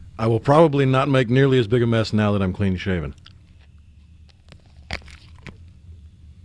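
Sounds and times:
speech: 0.2 - 3.2
crunch of biting into a lemon dessert display: 3.1 - 5.8.

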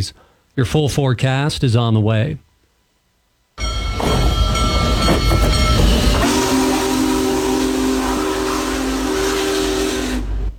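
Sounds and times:
speech: 0.0 - 2.5
steam locomotive rumbling past with hiss and clatter: 3.6 - 10.5.

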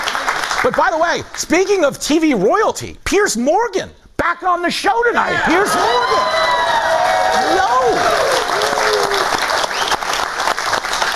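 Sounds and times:
studio audience clapping: 0.0 - 1.8, 5.8 - 11.1
speech: 0.6 - 6.5, 7.4 - 9.0
studio audience whoops and cheers: 5.4 - 10.0.

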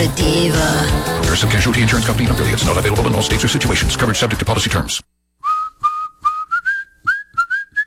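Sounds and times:
speech: 0.1 - 5.2
person whistling a bright tune: 5.4 - 7.8.

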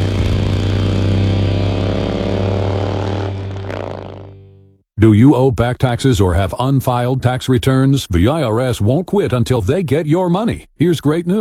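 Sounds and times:
Harley-Davidson motorcycle engine revving: 0.0 - 4.8
speech: 5.0 - 11.3.

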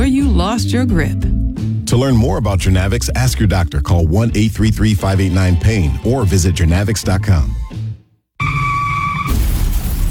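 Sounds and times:
speech: 0.4 - 1.3, 1.9 - 7.6
car tires squealing: 8.4 - 9.4
car crash: 8.4 - 10.0.

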